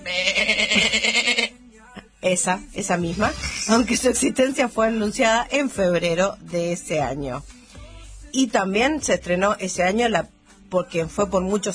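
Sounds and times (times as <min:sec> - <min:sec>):
sheep bleating: 0:00.0 - 0:01.6
speech: 0:02.3 - 0:07.6, 0:08.4 - 0:11.7.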